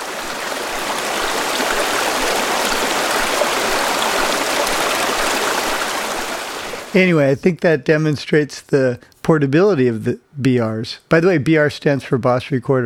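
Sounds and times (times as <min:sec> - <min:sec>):
flowing river or stream: 0:00.0 - 0:07.0
speech: 0:06.9 - 0:12.8.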